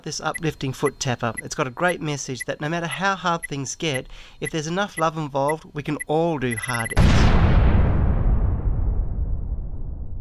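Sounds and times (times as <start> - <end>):
speech: 0.0 - 7.5
loud explosion: 7.0 - 10.1.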